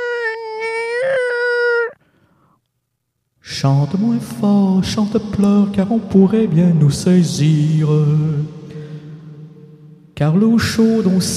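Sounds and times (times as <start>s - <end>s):
voice imitating a squealing tap being opened: 0.0s - 2.0s
speech: 3.6s - 8.6s, 10.2s - 11.3s.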